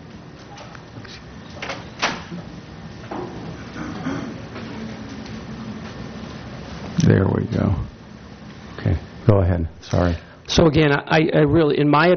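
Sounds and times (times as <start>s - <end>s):
steady hum of room noise: 0.0s - 12.1s
door pushed shut with sharp clicks and dull thud: 1.6s - 2.4s
speech: 7.1s - 7.9s, 8.8s - 12.1s.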